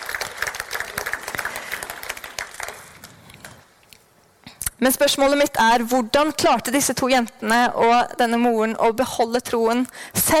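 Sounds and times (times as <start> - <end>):
audience applause: 0.0 - 3.6
speech: 4.8 - 10.3.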